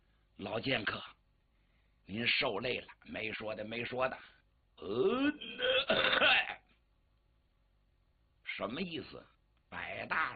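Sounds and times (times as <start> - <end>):
speech: 0.4 - 1.2, 2.1 - 6.5, 8.6 - 10.3
man performing a deliberate voiced throat-clearing cough: 5.0 - 6.7.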